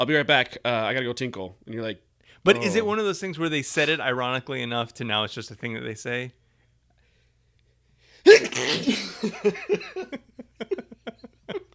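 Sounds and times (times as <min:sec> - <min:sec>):
speech: 0:00.0 - 0:06.4, 0:08.2 - 0:10.8
person sneezing loudly: 0:08.2 - 0:09.2.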